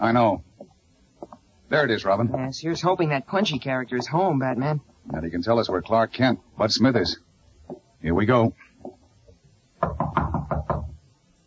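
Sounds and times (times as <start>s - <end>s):
speech: 0.0s - 0.5s, 1.7s - 7.3s, 8.0s - 8.7s
sharp knocks on a wooden door: 9.8s - 11.0s.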